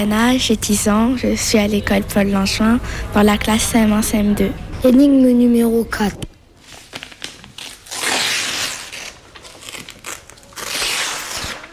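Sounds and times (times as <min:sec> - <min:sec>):
speech: 0:00.0 - 0:06.3
damaged sheet of paper being torn: 0:06.7 - 0:11.7.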